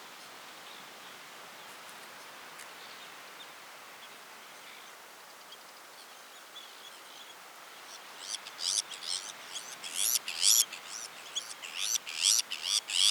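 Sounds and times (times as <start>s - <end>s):
Sabine's gull on Jan Mayen: 8.2s - 13.1s.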